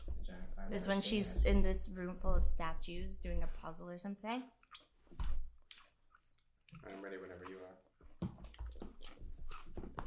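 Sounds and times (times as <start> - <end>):
speech: 0.6 - 5.3, 6.7 - 7.9
wet chewing and crunching of food: 4.5 - 10.0.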